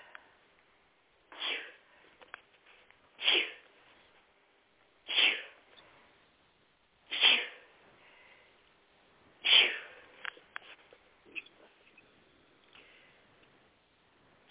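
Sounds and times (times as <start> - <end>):
person sneezing: 1.3 - 1.8, 3.2 - 3.7, 5.1 - 5.6, 7.1 - 7.7, 9.4 - 10.0.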